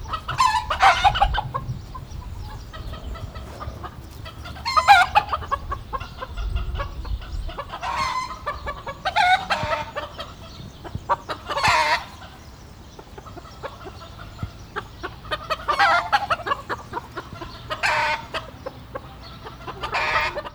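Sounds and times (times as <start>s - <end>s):
hens cackling in a zoo farmyard: 0.0s - 20.5s.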